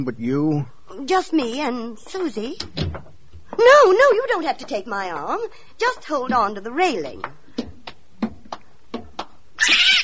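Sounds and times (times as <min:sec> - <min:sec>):
speech: 0:00.0 - 0:07.7
short soft knocks: 0:02.6 - 0:09.4
cat yowling: 0:09.6 - 0:10.0.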